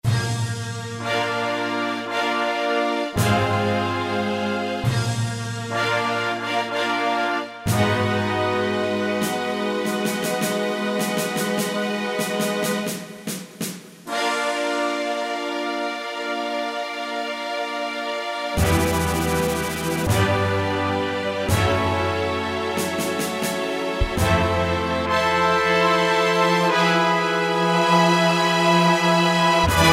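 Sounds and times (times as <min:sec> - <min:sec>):
synthesized full orchestra: 0:00.1 - 0:29.9.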